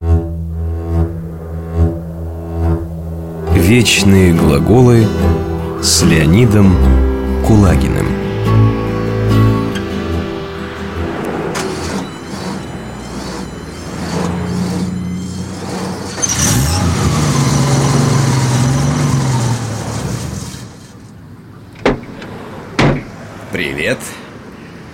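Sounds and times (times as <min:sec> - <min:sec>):
car engine idling with low hum and revving: 0:00.0 - 0:23.4
speech: 0:03.7 - 0:08.2
car door thuds: 0:21.7 - 0:23.2.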